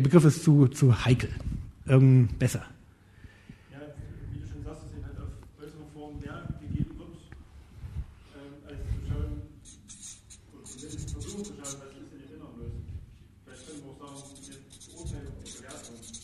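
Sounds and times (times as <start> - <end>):
speech: 0.0 - 2.8
pen scratching across paper: 9.6 - 11.9, 13.5 - 16.2.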